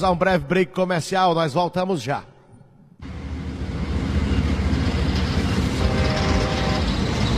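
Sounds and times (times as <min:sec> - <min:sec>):
speech: 0:00.0 - 0:02.3
train rumbling past with rattling wheels: 0:03.0 - 0:07.3.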